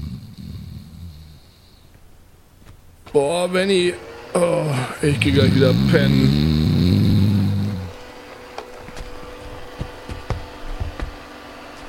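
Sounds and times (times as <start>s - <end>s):
speech: 3.1s - 6.6s
robot vacuum cleaner at home whirring with a steady low motor hum: 4.0s - 11.8s.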